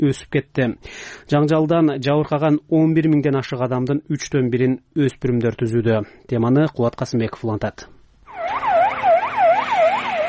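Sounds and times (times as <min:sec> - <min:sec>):
speech: 0:00.0 - 0:08.6
ambulance siren on an emergency run in Afghanistan: 0:08.3 - 0:10.2.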